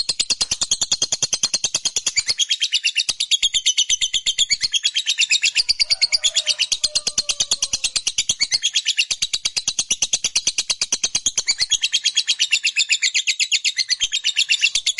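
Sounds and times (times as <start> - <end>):
fighter-type lovebird giving a long chattering call: 0.1 - 14.9.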